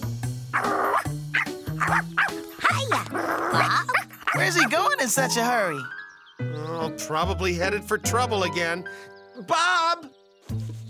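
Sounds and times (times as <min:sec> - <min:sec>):
dog barking: 0:00.5 - 0:04.9
speech: 0:04.4 - 0:06.0, 0:06.9 - 0:09.8.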